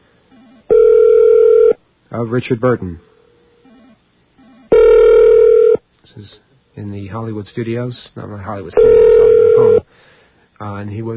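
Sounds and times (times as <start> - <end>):
telephone ringback tone on an outgoing call: 0.4 - 1.8, 3.7 - 5.8, 8.8 - 9.8
speech: 2.2 - 3.1, 6.2 - 9.9, 10.6 - 11.1
voice speaking through a phone line: 8.7 - 9.8.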